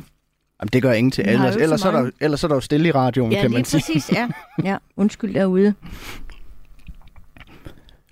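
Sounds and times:
speech: 0.6 - 6.3
laughter: 3.4 - 4.7
person chewing a meat-free dish: 6.2 - 8.1.

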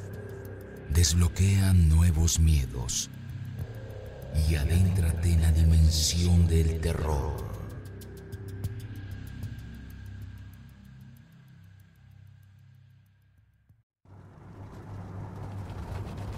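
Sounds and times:
speech: 1.0 - 3.2, 4.4 - 7.5
truck engine droning inside cab: 14.1 - 16.3.

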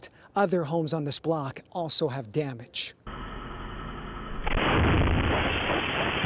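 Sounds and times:
speech: 0.4 - 3.0
house explosion: 4.4 - 6.2.

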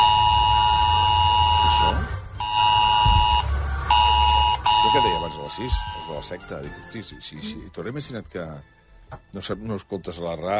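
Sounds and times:
loud harsh buzzing two-tone mobile phone emergency alert tone: 0.0 - 6.4
speech: 5.0 - 10.5.

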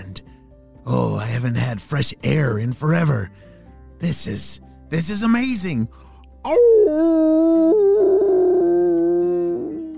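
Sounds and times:
speech: 0.9 - 8.0
dog howling: 6.6 - 9.9.

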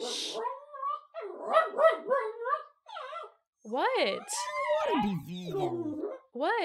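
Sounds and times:
dog barking in whiny yowling bursts: 1.2 - 3.3
speech: 3.7 - 6.6.

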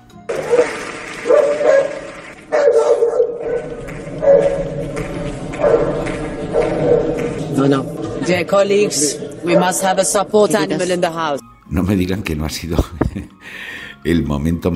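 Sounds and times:
dogs barking: 0.3 - 10.8
steady murmur: 0.3 - 11.3
speech: 7.7 - 14.7
laughter: 12.7 - 13.4.

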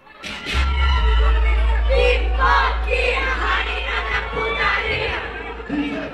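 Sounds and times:
large crowd of fans cheering and shouting for a singer: 0.0 - 6.1.

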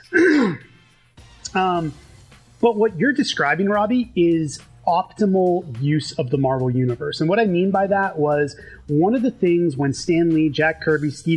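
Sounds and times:
person clearing throat: 0.0 - 0.7
speech: 1.5 - 11.3.

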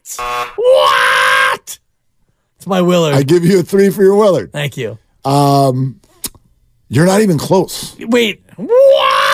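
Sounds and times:
loud harsh buzzer with wavering pitch: 0.2 - 0.7
speech: 2.7 - 6.1, 6.9 - 9.2.

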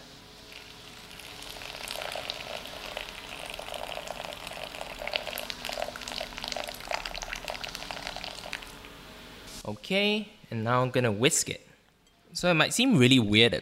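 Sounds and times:
just-boiled water poured onto chocolate: 0.5 - 8.8
speech: 9.7 - 11.7, 12.4 - 13.6.

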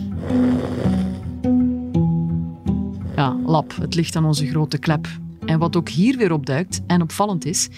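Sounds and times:
loud rattling snoring: 0.0 - 1.5, 2.9 - 3.8
speech: 3.2 - 7.7.

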